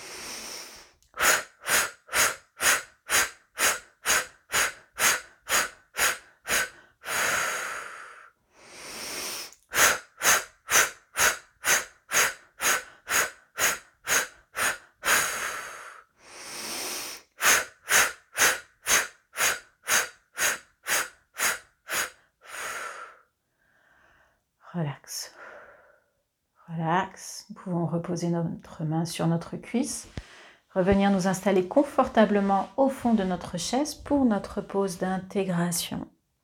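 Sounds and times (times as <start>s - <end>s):
person breathing deeply during a relaxation exercise: 0.0s - 24.4s
speech: 28.1s - 30.2s, 30.8s - 36.1s.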